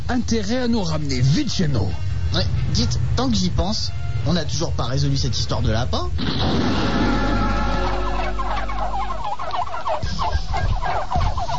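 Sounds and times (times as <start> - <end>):
turkeys gobbling: 0.0 - 5.4, 6.1 - 11.5
speech: 0.1 - 7.2
low rumble: 1.5 - 9.6.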